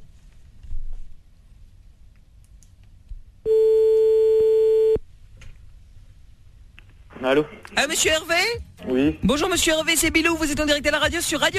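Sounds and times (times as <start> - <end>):
telephone tone of a call being placed: 3.5 - 5.0
speech: 7.2 - 11.5.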